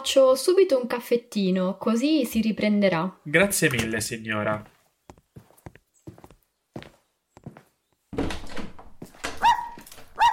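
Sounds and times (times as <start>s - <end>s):
speech: 0.0s - 4.8s
small pet dog taps and steps at home: 4.6s - 10.3s
small pet dog high-pitched yips or whines: 9.4s - 10.3s.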